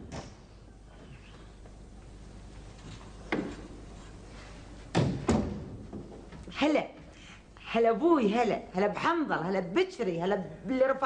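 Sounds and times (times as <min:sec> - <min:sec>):
door swinging shut with thuds and clicks: 0:04.9 - 0:05.8
speech: 0:06.6 - 0:07.0, 0:07.7 - 0:11.0.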